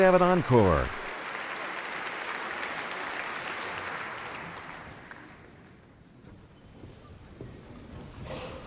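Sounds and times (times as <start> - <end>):
speech: 0.0 - 1.0
large concert audience applauding: 0.0 - 5.9.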